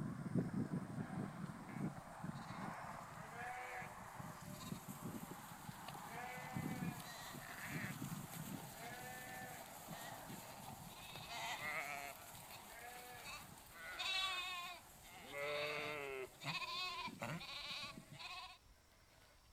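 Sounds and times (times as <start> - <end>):
soft animal sounds: 0.9 - 18.6
sheep bleating: 1.7 - 3.9, 6.1 - 8.0, 8.8 - 18.6.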